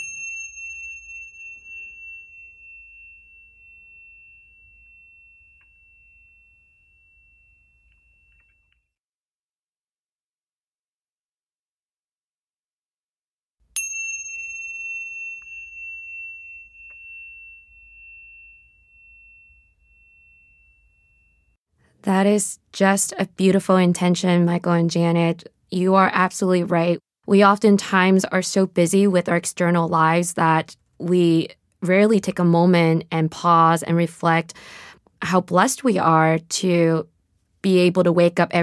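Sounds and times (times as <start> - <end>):
meditation chimes struck: 0.0 - 8.9, 13.8 - 21.6
speech: 22.0 - 38.6.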